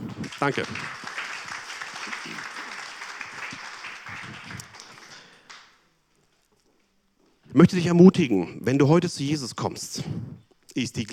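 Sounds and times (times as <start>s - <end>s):
audience applause: 0.0s - 5.8s
speech: 0.4s - 1.0s, 7.6s - 11.1s.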